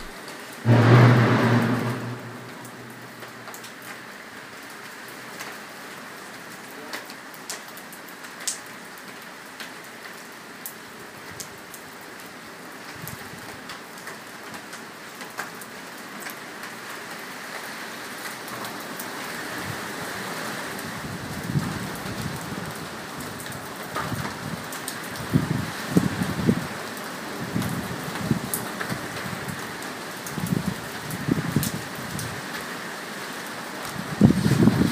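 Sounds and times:
steady rain: 0.0s - 34.9s
loud whooshing burst: 0.7s - 3.5s.

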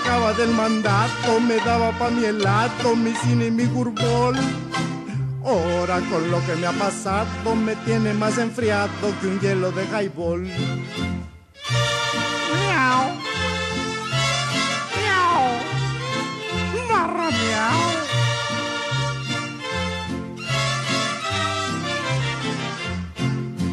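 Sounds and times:
steady busy musical accompaniment: 0.0s - 23.7s
speech: 0.3s - 12.3s
cat meowing with rising and falling pitch: 14.9s - 15.8s.

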